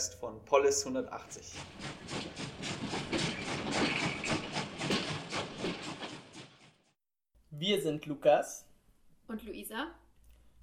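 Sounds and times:
speech: 0:00.0 - 0:03.0, 0:07.6 - 0:08.7, 0:09.3 - 0:10.0
train rolling along rails with wheels clattering over track joints: 0:01.3 - 0:06.9.

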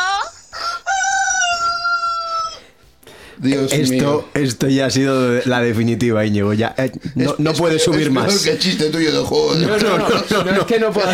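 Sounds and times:
rooster crowing: 0:00.5 - 0:02.7
speech: 0:03.4 - 0:11.1
laughter: 0:09.5 - 0:11.1.

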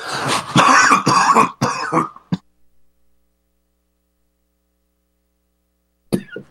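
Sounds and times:
harsh coughing and throat clearing: 0:00.4 - 0:02.5, 0:06.1 - 0:06.4.

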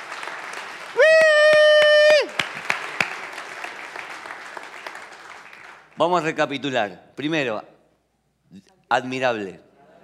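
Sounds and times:
audience clapping rhythmically: 0:00.0 - 0:06.4
speech: 0:06.0 - 0:07.7, 0:08.5 - 0:09.7.

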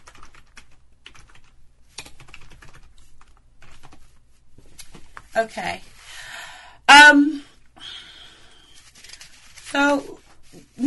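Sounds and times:
typing on a computer keyboard: 0:00.0 - 0:04.0
speech: 0:05.4 - 0:05.9, 0:07.1 - 0:07.4.

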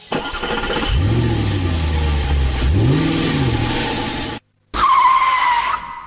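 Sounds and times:
car engine revving as the car accelerates away: 0:00.2 - 0:04.4
sharp high tire squeal: 0:04.8 - 0:06.0.

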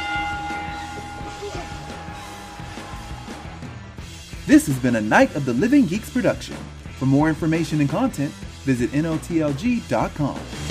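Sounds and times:
bell ringing: 0:00.0 - 0:03.6
speech: 0:04.5 - 0:10.7.

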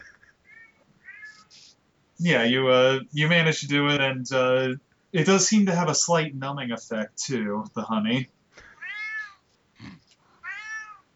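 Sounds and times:
cat meowing: 0:00.4 - 0:01.6, 0:08.8 - 0:09.4, 0:10.4 - 0:11.1
speech: 0:02.2 - 0:08.4.

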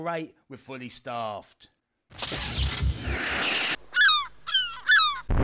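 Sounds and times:
speech: 0:00.0 - 0:03.6
seagull squawking as it is shot down: 0:03.4 - 0:05.3.

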